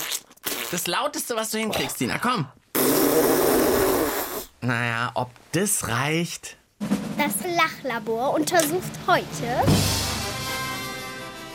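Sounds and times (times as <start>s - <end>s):
whoopee cushion squeezed, loud buzzy fart noise: 0.0s - 0.8s, 2.7s - 4.5s
speech: 0.7s - 3.9s, 4.6s - 10.0s.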